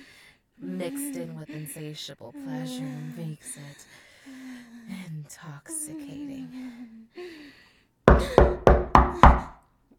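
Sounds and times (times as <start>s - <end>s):
speech: 0.8s - 7.5s
firm knocking on a door: 8.1s - 9.6s.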